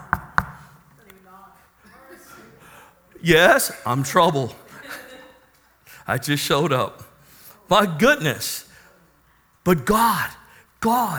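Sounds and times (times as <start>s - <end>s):
knocking on a door: 0.0s - 0.6s
laughter: 1.8s - 5.7s
speech: 3.2s - 4.6s, 6.1s - 7.1s, 7.7s - 8.7s, 9.6s - 11.1s.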